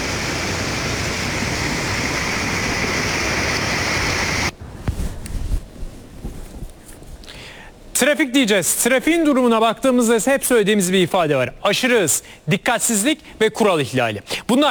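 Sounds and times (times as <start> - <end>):
water flowing through city streets: 0.0 - 4.8
heavy rain: 0.0 - 4.9
speech: 8.0 - 14.6.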